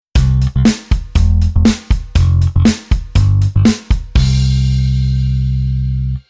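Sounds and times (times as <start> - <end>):
kick drum: 0.2 - 4.6
bass rhythm: 0.2 - 6.2.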